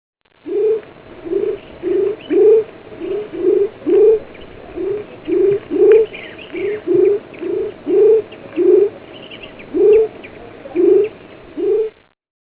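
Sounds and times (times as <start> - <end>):
frog giving low hooked notes: 0.4 - 12.0.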